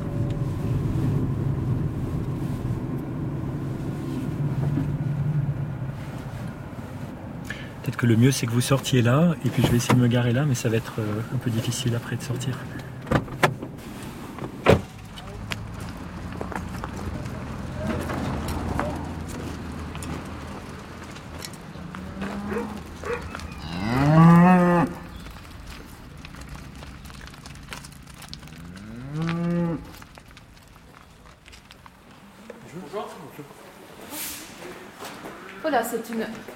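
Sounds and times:
low rumble: 0:00.0 - 0:29.1
speech: 0:08.0 - 0:13.3
cattle mooing in a cowshed: 0:21.8 - 0:25.1, 0:28.5 - 0:30.0.

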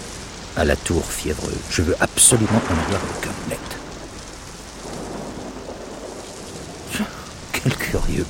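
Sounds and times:
heavy rain downpour: 0:00.0 - 0:08.2
speech: 0:00.6 - 0:03.8, 0:08.0 - 0:08.2
deep rolling thunder: 0:02.2 - 0:08.2.

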